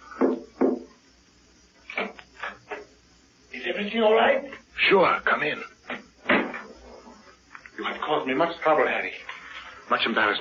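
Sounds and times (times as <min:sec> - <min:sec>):
knocking on a wooden door: 0:00.2 - 0:00.9
speech: 0:03.8 - 0:05.7, 0:08.1 - 0:09.3, 0:09.9 - 0:10.3.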